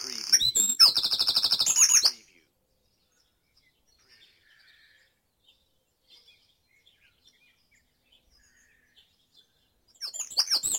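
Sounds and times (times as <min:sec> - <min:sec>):
bird singing a trill in dawn chorus in Mold, North Wales: 0:00.0 - 0:10.7.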